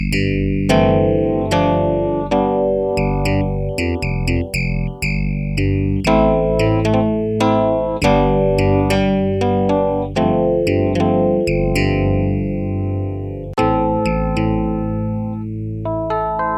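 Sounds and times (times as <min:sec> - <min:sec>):
FM DX7 clavinet-like worn electric piano synth: 0:00.2 - 0:16.5.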